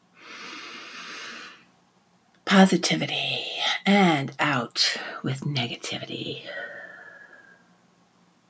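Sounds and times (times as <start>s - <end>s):
deep inhale through the nose: 0.1s - 1.7s, 6.5s - 7.7s
speech: 2.5s - 6.6s.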